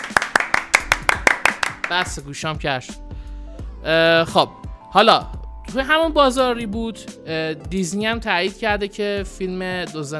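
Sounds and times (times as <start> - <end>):
steady rhythmic hand clapping: 0.0 - 2.2
speech: 1.9 - 3.0, 3.8 - 10.1.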